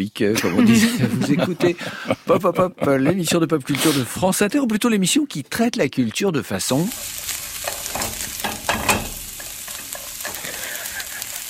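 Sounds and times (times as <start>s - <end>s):
speech: 0.0s - 7.4s
laughter: 0.4s - 3.5s, 10.4s - 11.4s
onions frying in a pan: 6.6s - 11.4s.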